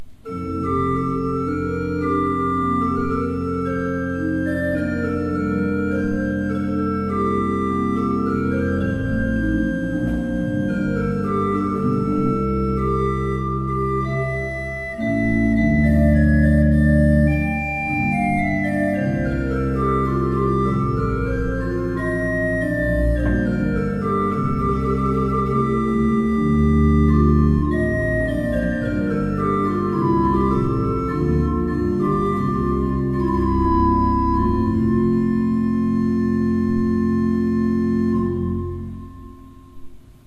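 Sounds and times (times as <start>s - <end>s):
used organ: 0.0s - 40.0s.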